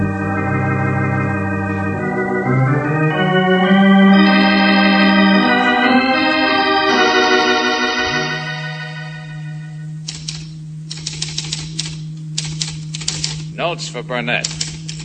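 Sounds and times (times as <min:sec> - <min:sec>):
sustained musical tones: 0:00.0 - 0:10.9
steady low hum: 0:00.0 - 0:15.0
typewriter clacking: 0:10.1 - 0:13.5, 0:14.4 - 0:15.0
speech: 0:14.0 - 0:14.6.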